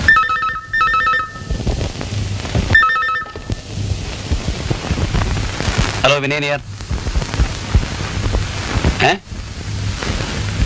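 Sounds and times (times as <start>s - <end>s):
telephone ringing: 0.0s - 1.6s, 2.8s - 3.6s
rough windy rumble: 0.0s - 10.6s
speech: 6.0s - 6.7s, 9.0s - 9.2s.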